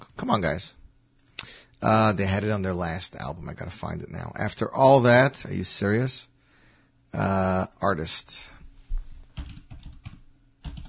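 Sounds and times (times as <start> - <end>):
speech: 0.3 - 0.8, 1.8 - 6.3, 7.1 - 8.6
typing on a computer keyboard: 9.4 - 10.8.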